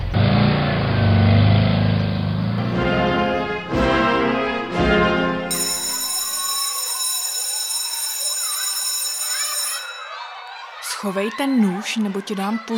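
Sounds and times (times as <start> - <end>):
car engine revving on a test drive: 0.0 - 3.9
laughter: 2.6 - 12.7
speech: 11.0 - 12.7.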